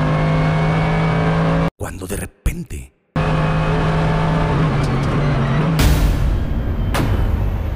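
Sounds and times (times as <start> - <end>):
Mercedes car accelerating at full throttle out of a bend: 0.0 - 1.7, 3.2 - 7.6.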